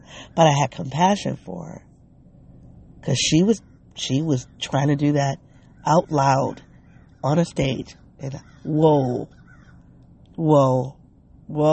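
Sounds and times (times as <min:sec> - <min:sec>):
speech: 0:00.2 - 0:01.9, 0:03.0 - 0:09.4, 0:10.4 - 0:11.7
crows cawing: 0:05.5 - 0:07.2, 0:08.4 - 0:10.0.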